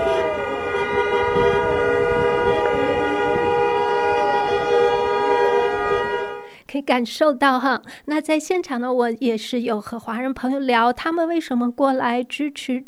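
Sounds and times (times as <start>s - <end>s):
crowd noise: 0.0s - 6.4s
street noise: 0.0s - 6.5s
passing cars honking horns: 0.0s - 6.6s
speech: 6.8s - 12.8s.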